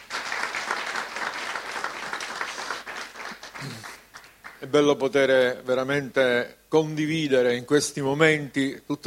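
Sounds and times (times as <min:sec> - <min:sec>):
crowd applauding: 0:00.0 - 0:04.7
speech: 0:04.6 - 0:09.0.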